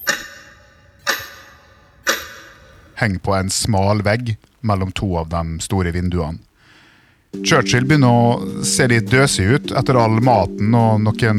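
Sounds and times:
large carved wall-mounted clock ticking: 0.0s - 6.6s, 7.3s - 11.3s
speech: 3.0s - 6.5s, 7.3s - 11.3s.

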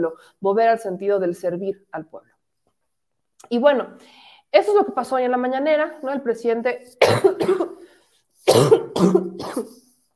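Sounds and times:
speech: 0.0s - 2.3s, 3.4s - 9.8s
person coughing harshly: 7.0s - 9.9s.

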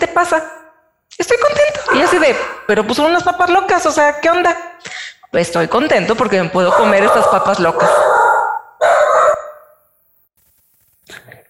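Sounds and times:
speech: 0.0s - 0.6s, 1.2s - 8.2s
dog barking: 1.8s - 2.7s, 6.6s - 9.8s.

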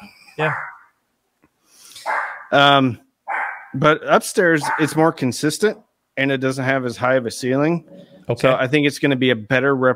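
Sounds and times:
speech: 0.4s - 0.7s, 2.5s - 3.0s, 3.7s - 9.9s
dog giving a loud drawn-out bark: 0.5s - 0.9s, 2.0s - 2.6s, 3.3s - 3.8s, 4.6s - 5.0s.

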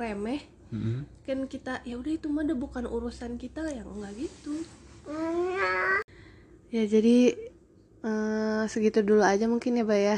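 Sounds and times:
speech: 0.0s - 6.0s, 6.7s - 10.1s
baby babbling after waking up: 5.1s - 6.1s.

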